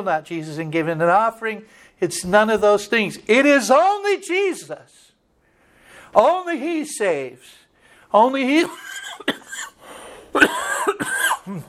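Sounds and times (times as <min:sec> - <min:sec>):
speech: 0:00.0 - 0:05.1, 0:06.1 - 0:09.7
person coughing harshly: 0:08.6 - 0:11.6.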